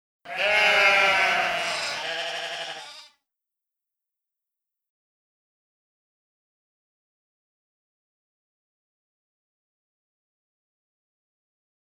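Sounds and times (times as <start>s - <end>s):
sheep baaing: 0.3s - 3.2s.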